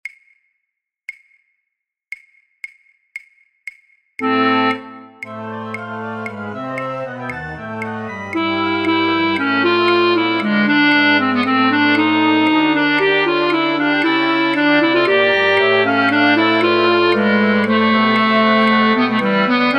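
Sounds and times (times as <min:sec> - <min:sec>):
flute orchestra: 0:04.4 - 0:19.7.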